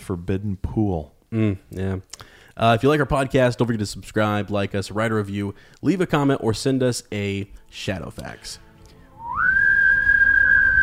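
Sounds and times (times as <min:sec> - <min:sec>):
speech: 0:00.1 - 0:08.6
person whistling a rising then steady high pitch: 0:09.2 - 0:10.8.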